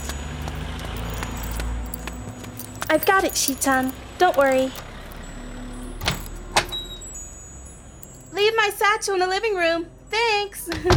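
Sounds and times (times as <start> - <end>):
keys jingling as pulled from a pocket: 0.0 - 7.2, 8.0 - 8.6
speech: 2.9 - 4.9, 8.6 - 10.9.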